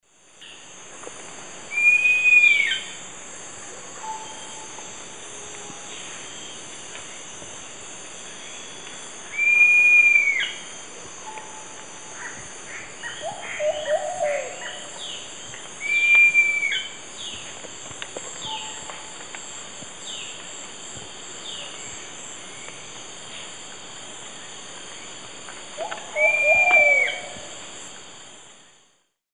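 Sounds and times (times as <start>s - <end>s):
Laniocera hypopyrra call in South American eastern lowlands: 1.7s - 2.9s, 9.3s - 10.6s, 12.2s - 17.4s, 25.8s - 27.5s.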